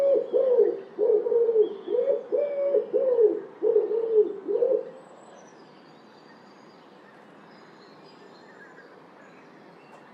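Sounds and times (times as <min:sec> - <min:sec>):
Common wood pigeon cooing: 0:00.0 - 0:04.9.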